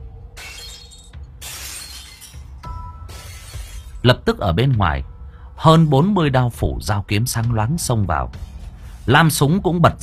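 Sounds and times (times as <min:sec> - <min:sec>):
table knocked over crashing with things breaking: 0:00.4 - 0:04.0
speech: 0:04.0 - 0:08.5, 0:09.1 - 0:10.0.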